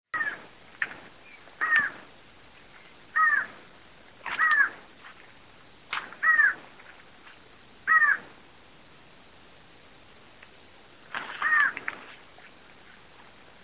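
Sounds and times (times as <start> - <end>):
variable antshrike Thamnophilus caerulescens calling: 0.2 - 0.5, 1.2 - 2.1, 3.0 - 4.8, 6.1 - 6.7, 7.8 - 8.3
faint background hiss: 0.2 - 13.6.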